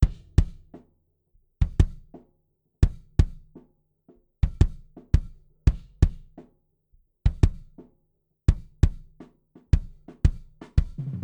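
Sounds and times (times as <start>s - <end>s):
debleed kick drum: 0.0s - 0.9s, 1.6s - 2.2s, 2.8s - 3.7s, 4.4s - 7.9s, 8.5s - 11.2s.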